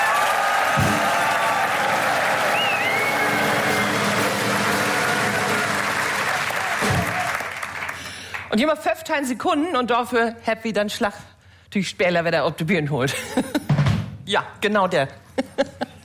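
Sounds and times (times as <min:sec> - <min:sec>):
large audience applauding loudly: 0:00.0 - 0:08.5
whistles from audience: 0:02.5 - 0:04.0
speech: 0:08.5 - 0:13.6, 0:14.3 - 0:15.8.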